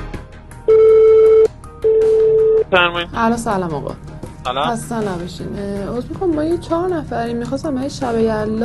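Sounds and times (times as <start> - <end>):
ringback tone of an outgoing phone call: 0.7 - 2.7
speech: 2.7 - 8.6.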